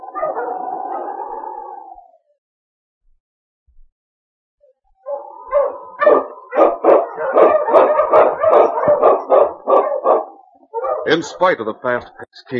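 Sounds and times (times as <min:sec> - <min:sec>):
dog barking: 0:00.0 - 0:01.0, 0:05.0 - 0:11.2
dog howling: 0:00.0 - 0:02.4, 0:05.0 - 0:11.2
speech: 0:11.1 - 0:12.5.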